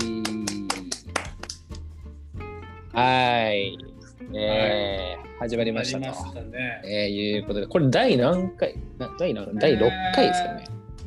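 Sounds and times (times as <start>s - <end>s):
hands clapping: 0.0s - 1.9s
speech: 3.0s - 11.0s.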